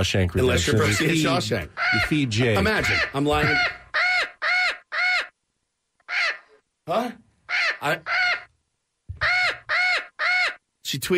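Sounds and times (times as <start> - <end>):
speech: 0.0 - 3.8, 6.9 - 7.2, 7.8 - 8.2, 10.9 - 11.1
crow cawing: 0.8 - 5.4, 6.0 - 6.6, 7.5 - 8.5, 9.1 - 10.6.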